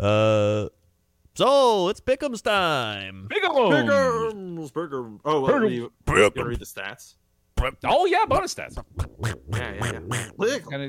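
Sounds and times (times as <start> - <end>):
speech: 0.0 - 0.8, 1.4 - 10.8
person imitating nasal buzzy duck quacks: 8.7 - 10.5.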